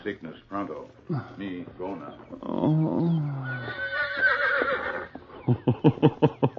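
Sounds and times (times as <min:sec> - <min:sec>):
speech: 0:00.0 - 0:04.4, 0:05.5 - 0:06.4
horse neighing: 0:01.1 - 0:05.4
laughter: 0:05.3 - 0:06.5.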